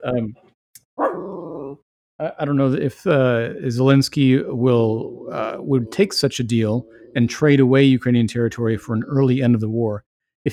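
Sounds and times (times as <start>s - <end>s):
speech: 0.0s - 0.4s, 2.2s - 10.5s
dog barking: 1.0s - 1.2s.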